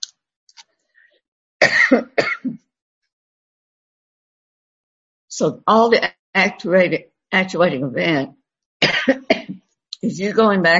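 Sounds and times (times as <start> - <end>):
person coughing harshly: 1.6 - 2.6, 8.8 - 9.6
speech: 1.9 - 2.6, 5.4 - 8.4, 9.0 - 10.7.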